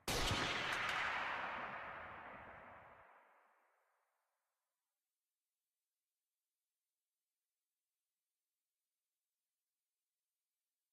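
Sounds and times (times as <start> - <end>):
rifle: 0.0 - 2.3.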